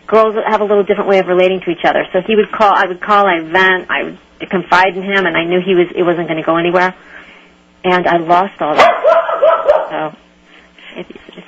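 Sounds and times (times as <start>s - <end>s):
speech: 0.1s - 9.3s, 9.9s - 10.2s, 11.0s - 11.4s
dog barking in short sharp yaps: 8.8s - 10.1s.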